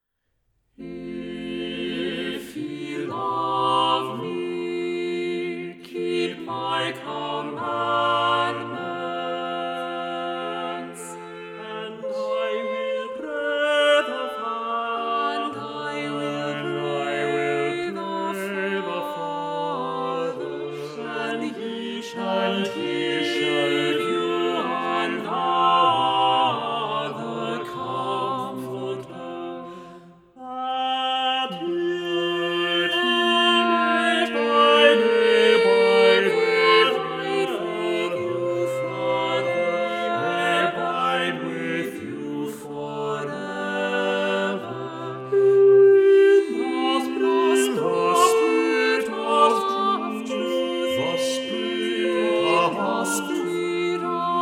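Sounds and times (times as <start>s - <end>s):
music without soprano: 0.8s - 54.4s.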